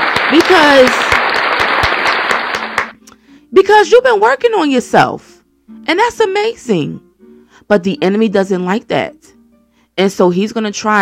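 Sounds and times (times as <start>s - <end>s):
audience applause during a faith-based talk: 0.0s - 3.0s
speech: 0.3s - 1.0s, 3.5s - 7.0s, 7.7s - 9.4s, 10.0s - 10.9s.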